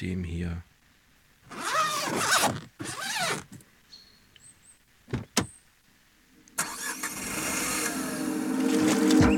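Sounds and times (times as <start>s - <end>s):
speech: 0.0s - 0.7s, 1.5s - 3.7s
zipper being pulled: 1.5s - 3.5s
engine cranking, starting up and idling with a rising whine: 6.6s - 9.2s.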